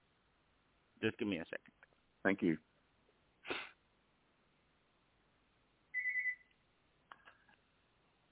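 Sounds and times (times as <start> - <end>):
speech: 1.0 - 2.7
phone ringing with electronic tone bursts from incoming test call: 5.9 - 6.5.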